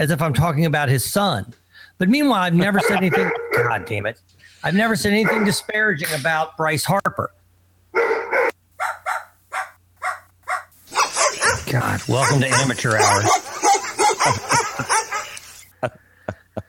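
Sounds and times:
speech: 0.0s - 8.1s, 11.7s - 13.4s, 14.2s - 14.6s, 15.8s - 16.0s
laughter: 2.6s - 3.9s, 11.1s - 16.6s
dog barking: 2.8s - 4.0s, 5.2s - 5.7s, 8.0s - 15.4s
dog yipping: 5.2s - 5.6s, 8.0s - 15.5s.

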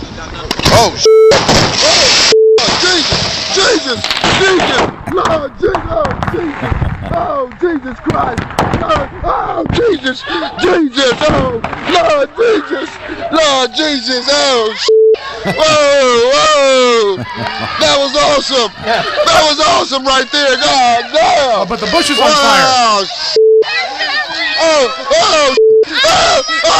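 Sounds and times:
speech: 0.2s - 2.2s, 3.0s - 23.4s, 24.6s - 26.7s
short electronic beeps: 1.0s - 1.4s, 2.2s - 2.7s, 14.8s - 15.2s, 21.9s - 23.8s, 25.4s - 26.0s
fireworks cracking and banging: 1.4s - 10.0s, 11.0s - 12.1s
laughter: 6.2s - 7.5s, 15.2s - 20.0s
excited voices talking and shouting: 12.4s - 26.7s.

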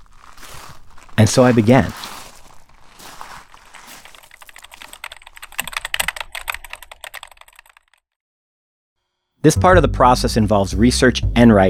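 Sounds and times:
speech: 1.2s - 2.1s, 9.4s - 11.6s
rapid typing on a computer keyboard: 4.0s - 8.0s.

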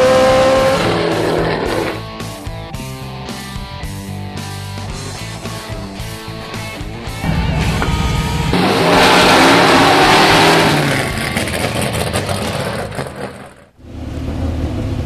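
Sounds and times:
race car tire noise: 0.0s - 2.1s, 4.4s - 15.0s
Trans Am series race car engine with 850 horsepower roaring at Willow Springs: 0.0s - 15.0s.

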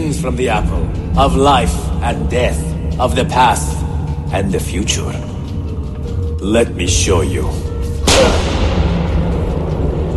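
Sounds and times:
long rumble: 0.0s - 10.1s
speech: 0.2s - 5.3s, 6.4s - 8.5s
wrist-mounted gun firing in a medieval-set video game: 8.0s - 9.2s.

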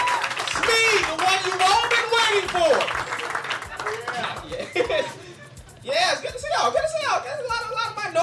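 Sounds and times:
cheering: 0.0s - 4.4s
crowd clapping: 0.0s - 5.8s
laughter: 0.0s - 8.2s.

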